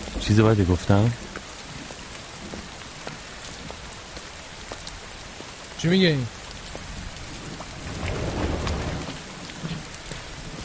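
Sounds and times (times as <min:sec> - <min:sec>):
steady dense rain: 0:00.0 - 0:10.6
speech: 0:00.3 - 0:01.3, 0:05.8 - 0:06.4
low rumble of thunder: 0:06.8 - 0:10.6.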